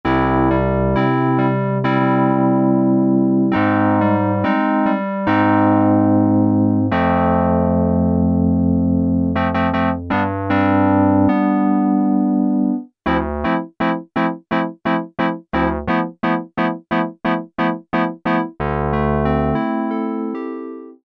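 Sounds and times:
synthesizer reed piano preset: 0:00.1 - 0:21.0.

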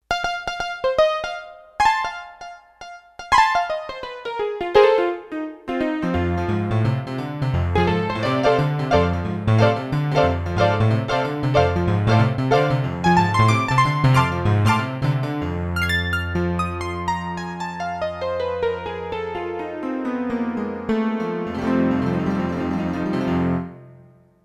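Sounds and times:
Roland D-10 touch piano: 0:00.1 - 0:24.2.

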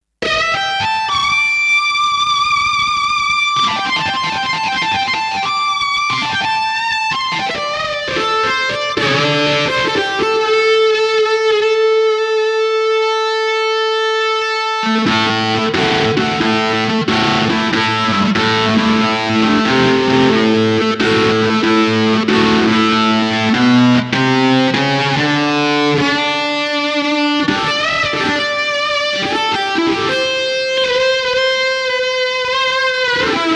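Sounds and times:
synthesizer factory preset lead guitar sound: 0:00.2 - 0:33.5.

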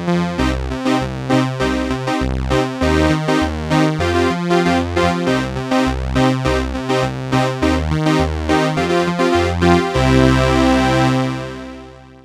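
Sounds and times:
'80s style Crumar Trilogy synth with slightly detuned oscillator: 0:00.1 - 0:11.9.

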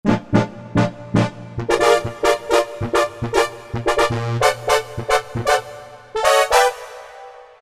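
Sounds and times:
brass stab: 0:00.1 - 0:07.6.

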